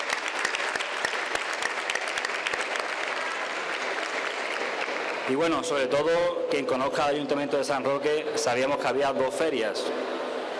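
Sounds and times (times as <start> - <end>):
crowd applauding: 0.0 - 5.8
speech: 5.3 - 10.1.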